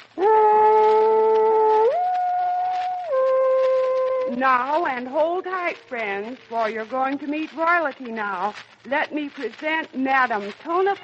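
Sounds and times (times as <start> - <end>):
man imitating a dog's bark with a howling call: 0.2 - 4.4
speech: 4.4 - 11.0.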